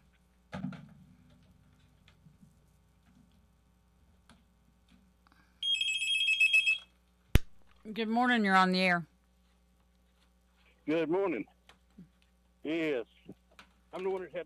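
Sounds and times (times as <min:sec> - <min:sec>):
telephone ring with a bright warbling electronic trill: 0:05.6 - 0:06.9
speech: 0:07.9 - 0:09.1, 0:10.9 - 0:11.6, 0:12.6 - 0:13.1, 0:14.0 - 0:14.4.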